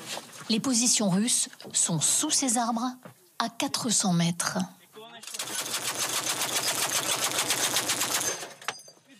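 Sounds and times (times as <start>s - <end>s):
speech: 0.5s - 4.8s
rapid automatic gunfire from front-line positions: 5.2s - 8.6s.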